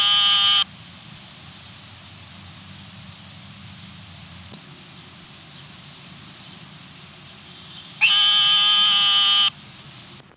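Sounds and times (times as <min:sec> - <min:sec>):
narrow-mouthed frog of the family Microhylidae giving a long steady tone: 0:00.0 - 0:00.7, 0:07.4 - 0:09.7.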